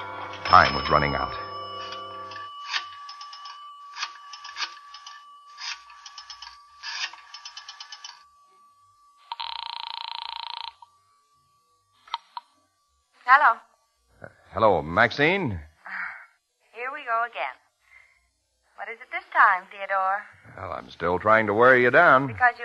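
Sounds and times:
telephone ringing in a residential hotel lobby phone booth: 0.0 - 11.0
sustained electronic telephone tone: 0.0 - 15.6
speech: 0.5 - 1.5, 14.6 - 15.7, 18.9 - 22.6.

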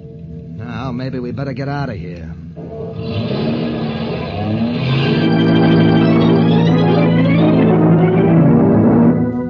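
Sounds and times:
speech: 0.9 - 3.6, 4.5 - 5.2
car engine revving and roaring away up the street: 2.9 - 9.4.

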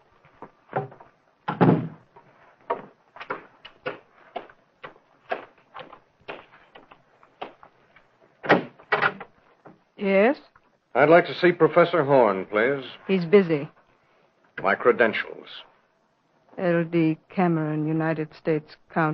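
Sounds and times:
door being handled and shut with thuds and knocks: 1.5 - 2.1, 8.4 - 9.2
speech: 10.0 - 13.8, 14.6 - 15.7, 16.6 - 19.1.

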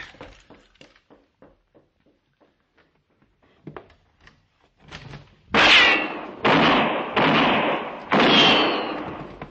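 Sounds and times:
gunshots with decay in a shootout: 5.6 - 9.4.

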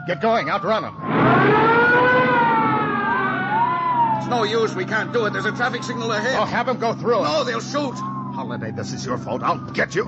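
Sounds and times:
speech: 0.0 - 2.0, 4.2 - 10.0
police car sirens wailing during a chase: 0.0 - 10.0.

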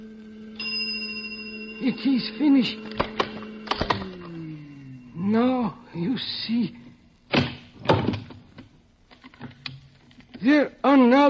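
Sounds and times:
bell ringing: 0.0 - 6.0
steady low hum: 0.0 - 7.8
speech: 1.8 - 3.0, 5.3 - 6.8, 10.4 - 11.2.

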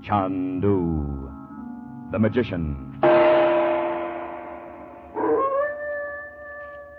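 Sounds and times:
speech: 0.0 - 1.4, 2.1 - 3.3
dog howling: 5.2 - 6.8.

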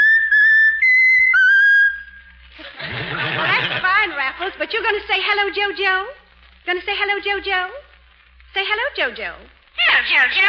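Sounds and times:
talking bird whistling a tune: 0.0 - 2.3
laughter: 2.6 - 4.5
speech: 4.6 - 7.9, 8.5 - 10.4.

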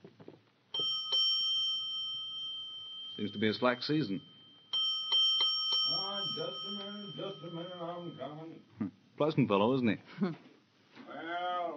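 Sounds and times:
doorbell chiming with two clear bright tones: 0.7 - 8.7
speech: 3.2 - 4.3, 6.4 - 10.5.

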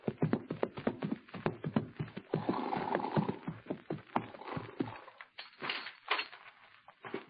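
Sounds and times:
horses riding up to a ranch house with hooves clip-clopping: 0.0 - 7.2
horses snorting: 2.2 - 5.3.

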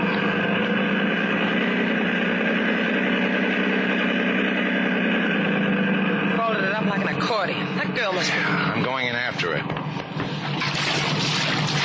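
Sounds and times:
motorboat engine running during a boat ride around a harbor: 0.0 - 11.8
speech: 7.4 - 9.8.

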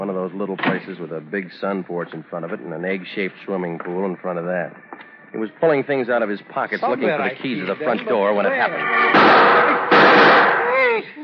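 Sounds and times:
speech: 0.0 - 10.3
gunshot outside a small house with a sun porch: 9.2 - 10.7.

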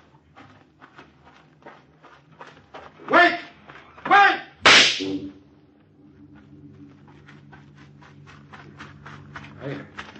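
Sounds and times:
gunshot fired at a guarded gate: 4.6 - 5.3.

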